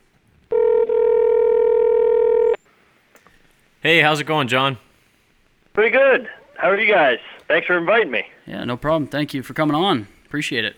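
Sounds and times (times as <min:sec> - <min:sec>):
telephone tone of a phone call being placed: 0:00.5 - 0:02.6
speech: 0:03.8 - 0:04.8, 0:05.8 - 0:10.7.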